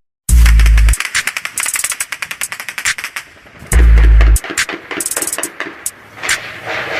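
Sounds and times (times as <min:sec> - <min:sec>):
sharp isolated gunshots: 0:00.3 - 0:06.9
long rapid bursts of automatic gunfire: 0:00.4 - 0:06.8.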